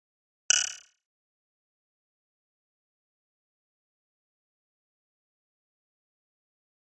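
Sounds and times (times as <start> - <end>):
electric spring button: 0.5 - 0.9.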